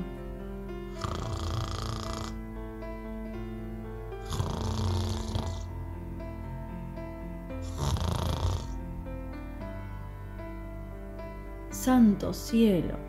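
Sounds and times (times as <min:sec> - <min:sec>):
steady gentle musical drone: 0:00.0 - 0:13.0
soft breathy snores from a little sheep: 0:00.9 - 0:02.4, 0:04.2 - 0:05.7, 0:07.6 - 0:08.8
speech: 0:11.9 - 0:13.0.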